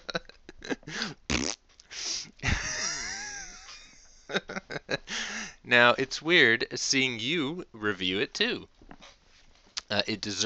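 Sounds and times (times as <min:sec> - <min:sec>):
laughter: 0:00.0 - 0:01.0, 0:02.4 - 0:05.1
fart sound effect: 0:01.3 - 0:01.6
speech: 0:05.7 - 0:08.8, 0:09.9 - 0:10.4.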